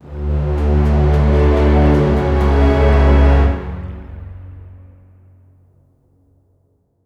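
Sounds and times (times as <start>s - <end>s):
orchestral suspense hits: 0.0s - 5.1s.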